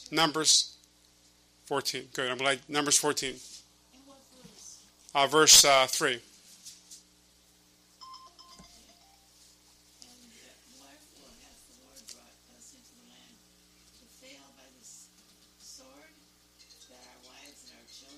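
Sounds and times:
speech: 0:00.1 - 0:00.8, 0:01.7 - 0:03.6, 0:05.2 - 0:06.3
short electronic telephone tones: 0:08.0 - 0:09.3.

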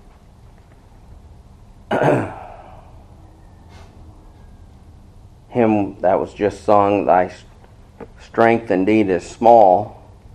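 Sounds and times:
throat-clearing cough: 0:01.9 - 0:02.8
speech: 0:02.0 - 0:02.4, 0:05.6 - 0:07.5, 0:08.3 - 0:10.0.

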